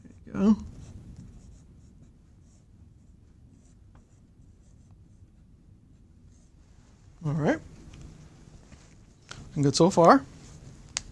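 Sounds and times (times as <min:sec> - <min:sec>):
scratching and rubbing of writing on a physics problem: 0:00.0 - 0:06.6
speech: 0:00.4 - 0:00.7, 0:09.6 - 0:10.3.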